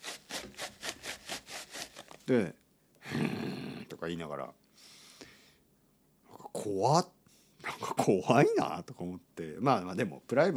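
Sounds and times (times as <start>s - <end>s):
paper tissue rubbed hard imitating vigorous wiping: 0.0s - 2.1s
speech: 2.3s - 3.3s, 4.0s - 4.6s, 6.6s - 7.2s, 7.9s - 10.5s.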